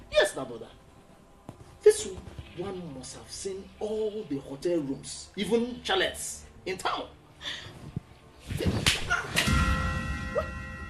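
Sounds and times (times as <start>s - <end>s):
speech: 0.4s - 0.9s, 1.8s - 7.8s
slap across the face: 8.6s - 9.6s.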